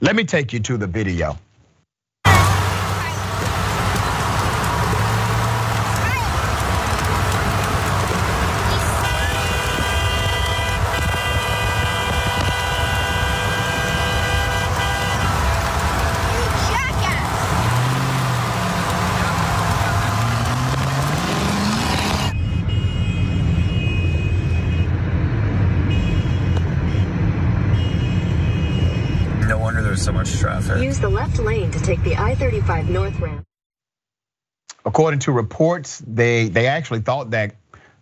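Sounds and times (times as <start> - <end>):
speech: 0.0 - 1.4, 31.9 - 33.4, 34.9 - 37.6
loud sustained car horn blaring: 2.3 - 25.0, 25.9 - 29.4
highway traffic on a Texas highway: 2.3 - 33.4.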